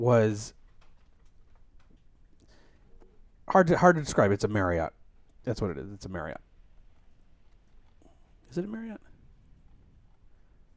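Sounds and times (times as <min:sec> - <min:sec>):
speech: 0:00.0 - 0:00.6, 0:03.5 - 0:06.5, 0:08.5 - 0:09.1
fingers typing on a keyboard: 0:00.6 - 0:02.9.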